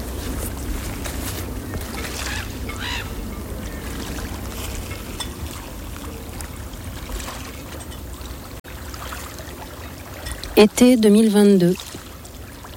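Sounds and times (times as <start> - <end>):
bird calls: 0.0 - 8.6
continuous low rumble on calm gulf water: 0.0 - 8.6
soft wash of calm gulf water: 0.0 - 12.7
speech: 10.6 - 12.0.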